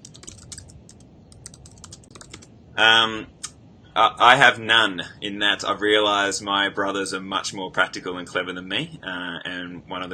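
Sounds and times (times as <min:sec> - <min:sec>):
typing on a computer keyboard: 0:00.0 - 0:02.5
speech: 0:02.8 - 0:03.4, 0:04.0 - 0:10.1.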